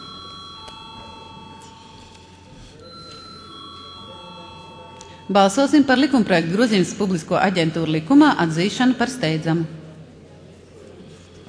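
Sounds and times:
parliament voting bell ringing in the chamber: 0.0 - 8.0
speech: 5.3 - 9.8.

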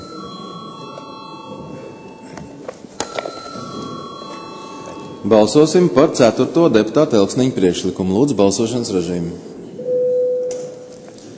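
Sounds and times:
bell rung to call members of parliament to a vote: 0.0 - 6.0
speech: 5.2 - 9.6.

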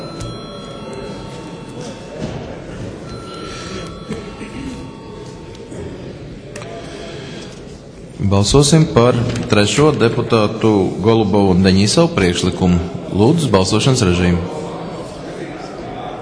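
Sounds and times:
electric parliamentary voting call bell ringing: 0.0 - 7.5
faint murmur of people: 0.0 - 16.2
speech: 8.2 - 14.6.

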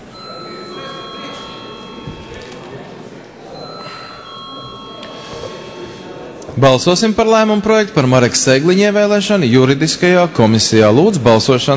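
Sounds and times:
dense wash of noise: 0.0 - 11.7
electric bell ringing in a parliamentary chamber to call a vote: 0.1 - 6.4
speech: 6.6 - 11.7.

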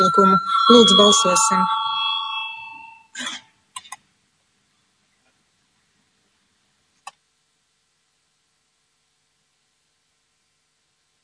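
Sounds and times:
speech: 0.0 - 1.8
bell rung in a parliament chamber to call a vote: 0.0 - 3.0.

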